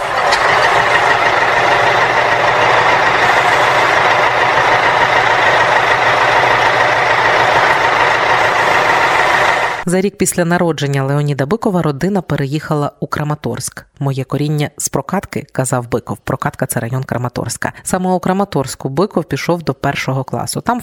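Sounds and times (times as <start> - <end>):
tractor engine running: 0.0 - 9.9
speech: 9.9 - 20.8.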